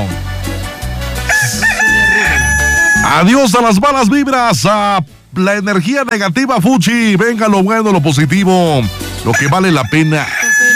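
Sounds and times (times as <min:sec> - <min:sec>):
rooster crowing: 0:01.2 - 0:04.3, 0:09.3 - 0:10.7
speech: 0:03.1 - 0:10.4.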